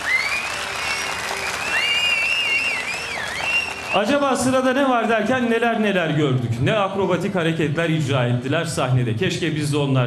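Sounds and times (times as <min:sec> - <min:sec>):
shrill whistles from a concert audience: 0:00.0 - 0:04.1
concert audience applause for a stage performance: 0:00.0 - 0:05.0
speech: 0:03.9 - 0:10.0.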